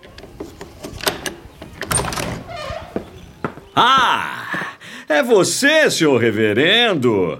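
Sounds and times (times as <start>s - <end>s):
room door creaking as it swings open: 0.0s - 3.8s
room door thudding softly: 1.1s - 3.7s
speech: 3.8s - 4.3s, 5.1s - 7.3s.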